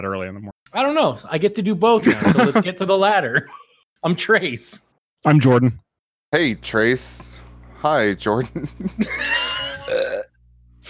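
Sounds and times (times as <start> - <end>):
speech: 0.0 - 9.4
laughter: 2.0 - 2.8, 8.3 - 10.1
loud burp: 9.6 - 10.4.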